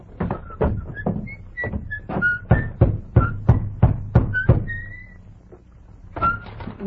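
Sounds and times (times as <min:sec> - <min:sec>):
soldier knocking on the wooden door of a small white cottage: 0:00.1 - 0:05.2
faint whistle-like tones: 0:00.4 - 0:03.6, 0:04.2 - 0:05.3, 0:06.2 - 0:06.6.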